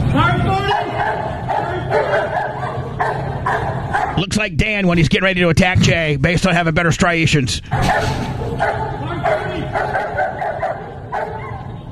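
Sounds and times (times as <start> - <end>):
police dog barking excitedly: 0.6 - 4.3, 7.7 - 11.8
speech: 4.2 - 9.0.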